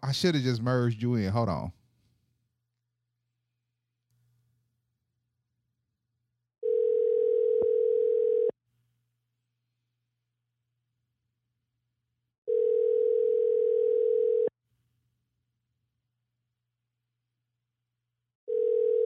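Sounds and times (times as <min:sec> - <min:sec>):
speech: 0:00.1 - 0:01.8
telephone ringback tone on an outgoing call: 0:06.6 - 0:08.5, 0:12.5 - 0:14.5, 0:18.5 - 0:19.0.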